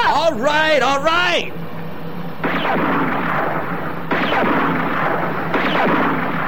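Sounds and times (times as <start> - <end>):
low engine drone: 0.0 - 6.4
speech: 0.3 - 1.6
gunshots fired from a moving vehicle: 2.4 - 6.4.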